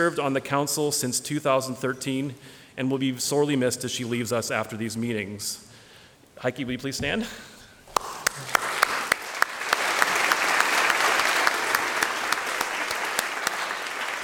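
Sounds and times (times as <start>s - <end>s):
speech: 0.0s - 5.8s, 6.4s - 7.6s
room full of people applauding: 7.9s - 14.2s.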